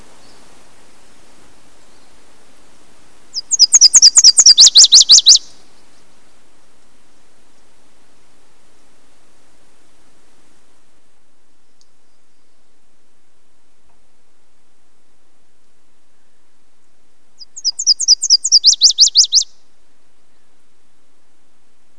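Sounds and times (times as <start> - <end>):
Nashville warbler singing and calling: 3.3 - 6.1, 17.4 - 19.5.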